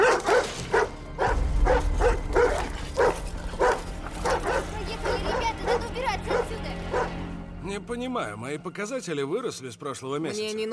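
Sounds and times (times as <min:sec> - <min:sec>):
dog barking at people peering through a high metal gate: 0:00.0 - 0:07.2
speech: 0:07.9 - 0:10.7.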